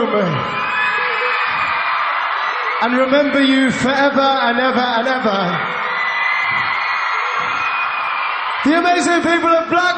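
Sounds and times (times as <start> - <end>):
large concert crowd in Blackpool cheering and whooping: 0.0 - 9.9
speech: 0.1 - 0.7, 2.8 - 5.8, 8.6 - 9.9.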